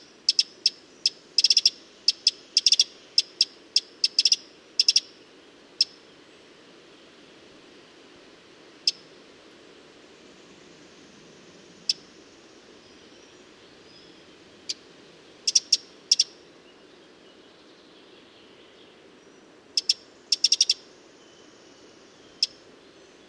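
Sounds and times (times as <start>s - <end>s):
Eurasian wren (Troglodytes troglodytes) giving sharp ticking calls: 0.0s - 5.2s, 5.8s - 6.0s, 8.8s - 9.1s, 11.8s - 12.1s, 15.4s - 16.5s, 19.8s - 20.9s, 22.2s - 22.6s.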